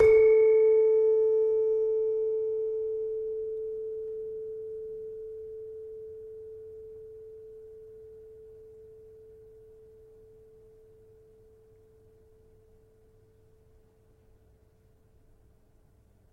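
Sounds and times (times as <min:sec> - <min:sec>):
tuned gamelan: 0:00.0 - 0:02.6.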